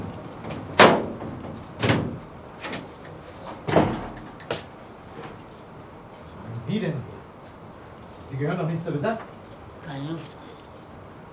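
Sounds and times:
bolted door aboard a ship being worked open: 0.0s - 2.9s, 3.6s - 4.7s
speech: 8.4s - 9.4s.

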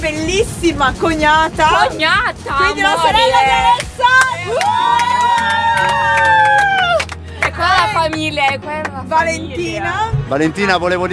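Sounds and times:
speech: 0.0s - 6.7s, 7.5s - 11.1s
crowd cheering: 2.9s - 8.4s
crowd clapping: 2.9s - 9.4s
high whooping cry: 3.0s - 7.0s.

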